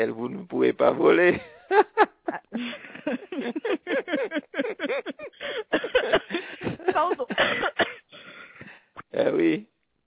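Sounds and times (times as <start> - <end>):
speech: 0.0 - 2.8
laughter: 1.3 - 7.8
person coughing harshly: 4.9 - 8.1.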